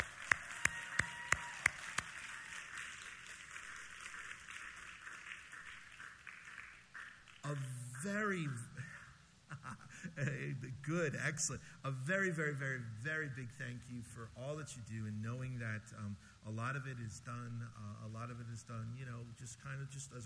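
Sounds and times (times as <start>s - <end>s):
audience applauding: 0.0s - 8.1s
speech: 7.5s - 8.7s, 10.1s - 20.2s.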